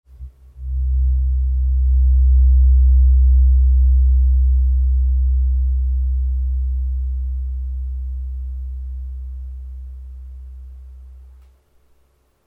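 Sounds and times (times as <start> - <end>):
64 Hz therapeutic tuning fork tone: 0.1 - 11.6.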